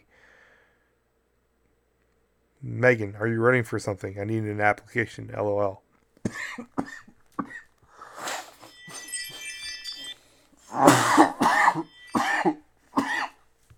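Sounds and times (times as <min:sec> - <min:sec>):
speech: 0:02.6 - 0:07.0
person with a two-week cough coughing: 0:06.3 - 0:09.5, 0:10.7 - 0:13.4
small throat-clearing hacks: 0:06.3 - 0:13.4.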